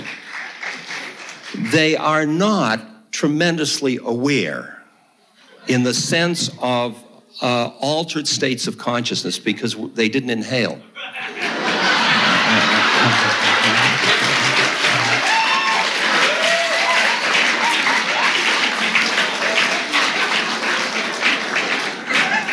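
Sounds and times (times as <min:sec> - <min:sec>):
audience applauding: 0:00.0 - 0:01.7, 0:11.2 - 0:22.5
speech: 0:01.6 - 0:04.8, 0:05.7 - 0:11.2
chuckles: 0:12.0 - 0:15.2
murmurs: 0:12.3 - 0:15.2.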